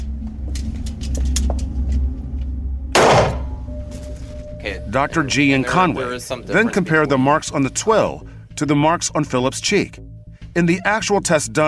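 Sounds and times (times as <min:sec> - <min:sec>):
steady low rumble: 0:00.0 - 0:08.5
gunshot fired into a cotton twill target in a close-range firing test: 0:03.0 - 0:03.6
speech: 0:04.6 - 0:11.6.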